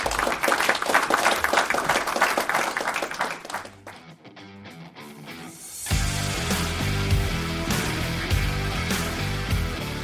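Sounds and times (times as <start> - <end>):
loud dense audience applause: 0.0 - 4.0
steady music with low pulsing bass: 5.8 - 10.0.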